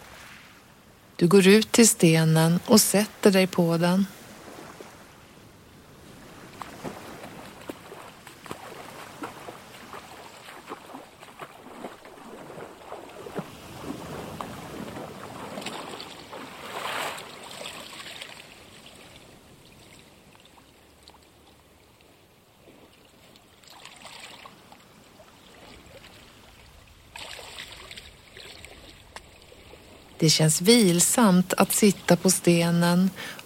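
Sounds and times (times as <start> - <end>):
water lapping against a beach shore: 0.0 - 33.4
speech: 1.2 - 4.2, 30.2 - 33.4.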